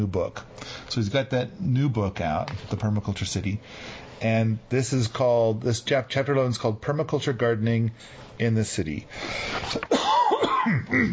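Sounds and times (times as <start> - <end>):
speech: 0.0 - 11.1
person coughing into a microphone: 9.7 - 11.1.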